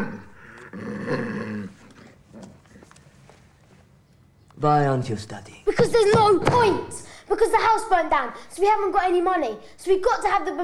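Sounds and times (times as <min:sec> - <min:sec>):
guide dog snarling: 0:00.0 - 0:02.6
speech: 0:04.6 - 0:10.6.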